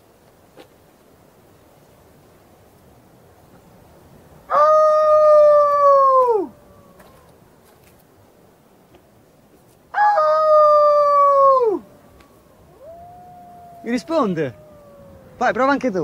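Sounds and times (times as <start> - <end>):
wolf howling: 4.5 - 7.4, 10.0 - 16.0
speech: 13.9 - 14.6, 15.4 - 16.0.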